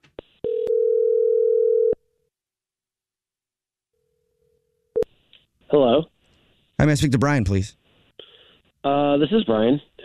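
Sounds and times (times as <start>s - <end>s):
telephone ring tone from an outgoing call: 0.5s - 2.0s
speech: 6.8s - 7.8s, 8.8s - 10.0s.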